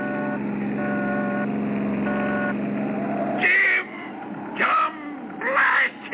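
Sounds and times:
tonal car horn blare: 0.0s - 2.6s, 3.4s - 5.2s
car engine roaring while speeding along a road: 0.0s - 6.1s.

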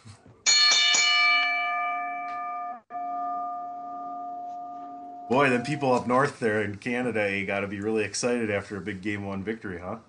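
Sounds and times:
bright bell ringing: 0.5s - 6.3s
speech: 5.3s - 10.0s.

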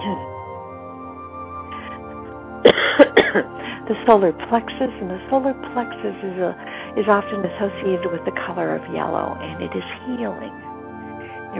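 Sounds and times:
coughs: 2.6s - 3.6s
speech: 3.0s - 10.7s.

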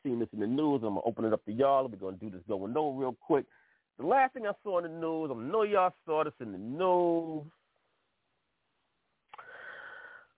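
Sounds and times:
speech: 0.2s - 7.6s
deep breath in: 3.5s - 3.9s, 9.4s - 10.3s.

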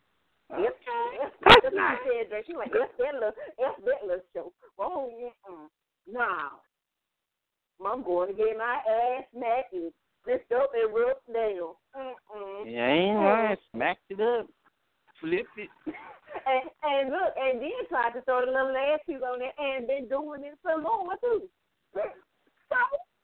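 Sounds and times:
small dog barking: 1.1s - 2.0s
speech: 1.7s - 6.7s, 7.8s - 14.6s, 15.2s - 23.1s.

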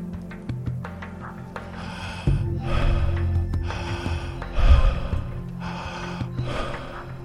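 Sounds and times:
soft sustained musical drone: 0.0s - 7.2s
deep connected circular breathing: 1.6s - 7.2s.

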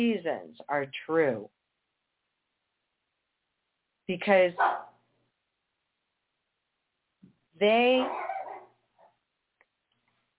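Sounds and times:
speech: 0.0s - 1.6s, 4.1s - 4.9s, 7.6s - 8.3s
dog yipping softly: 4.6s - 4.9s, 8.0s - 9.2s
dog barking: 4.6s - 5.0s, 8.0s - 9.1s.

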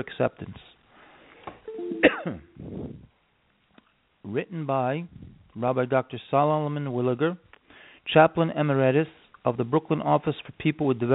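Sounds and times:
speech: 0.0s - 0.7s, 1.9s - 2.5s, 4.3s - 7.4s, 8.0s - 11.1s
person coughing: 2.0s - 2.7s.

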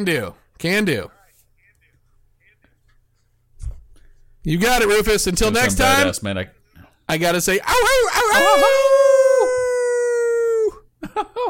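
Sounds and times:
speech: 0.0s - 1.2s, 4.4s - 8.9s, 11.1s - 11.4s
human voice imitating a howl: 7.7s - 10.8s.

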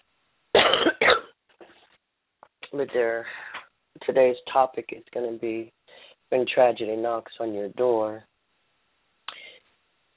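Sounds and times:
person coughing: 0.6s - 1.8s
speech: 2.8s - 8.3s.

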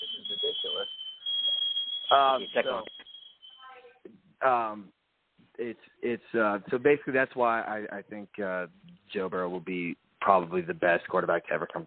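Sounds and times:
shrill high-pitched smoke detector alarm tone: 0.0s - 4.1s
speech: 2.1s - 3.0s, 4.4s - 5.0s, 5.6s - 11.8s.

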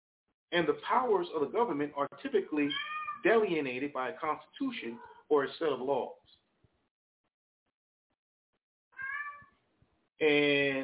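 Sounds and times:
speech: 0.5s - 6.3s, 10.2s - 10.8s
cats meowing: 2.6s - 3.2s, 9.0s - 9.6s.

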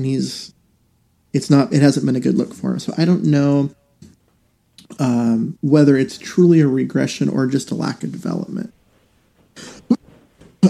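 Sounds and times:
speech: 0.0s - 0.6s, 1.3s - 3.8s, 4.9s - 8.8s
person coughing: 9.6s - 10.6s.

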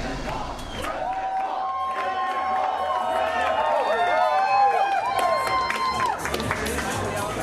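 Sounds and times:
large political rally crowd cheering: 0.2s - 7.3s
overlapping shouts and whoops: 0.9s - 6.2s.

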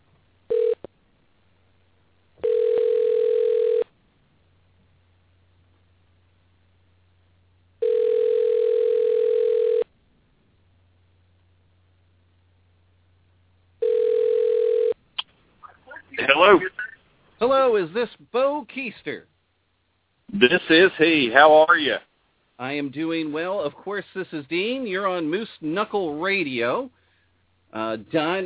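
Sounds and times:
telephone line tones while placing a call: 0.5s - 0.8s, 2.4s - 3.9s, 7.8s - 9.9s, 13.8s - 15.0s
speech: 17.4s - 19.3s, 20.4s - 27.0s, 27.7s - 28.4s.

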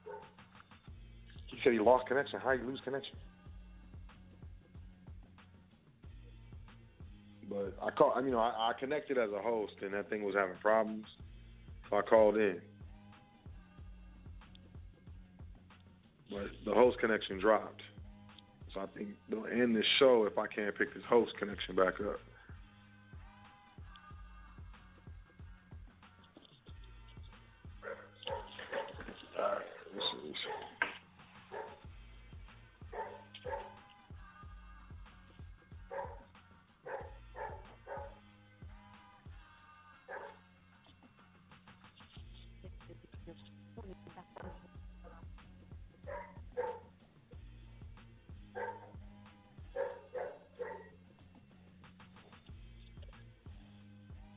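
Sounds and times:
dog barking: 0.0s - 0.4s, 27.8s - 30.9s, 31.5s - 31.8s, 32.9s - 33.8s, 35.8s - 38.2s, 40.1s - 40.5s, 46.0s - 46.9s, 48.5s - 49.0s, 49.6s - 51.0s
dog yipping: 0.0s - 0.4s, 27.8s - 29.0s, 30.0s - 30.8s, 31.5s - 31.8s, 32.9s - 33.8s, 35.9s - 36.3s, 36.9s - 38.2s, 40.1s - 40.4s, 46.0s - 46.9s, 48.6s - 49.0s, 49.7s - 51.0s
speech: 1.6s - 3.4s, 7.6s - 11.3s, 11.9s - 12.7s, 16.3s - 17.9s, 18.8s - 22.3s.

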